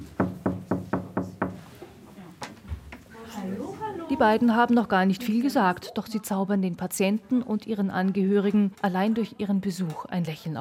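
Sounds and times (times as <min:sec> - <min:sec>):
knocking on a wooden door: 0:00.2 - 0:01.6
speech: 0:04.1 - 0:10.5.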